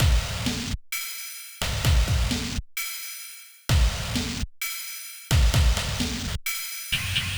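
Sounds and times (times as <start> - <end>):
slow tempo pop rock FX drums: 0.0 - 7.3.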